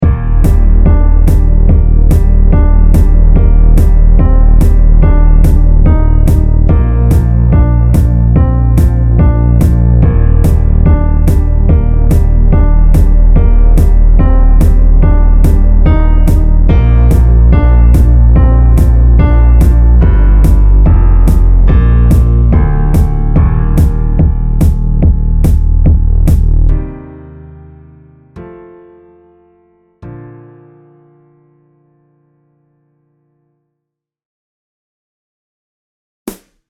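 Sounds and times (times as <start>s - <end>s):
bass chorus: 0.0s - 26.9s.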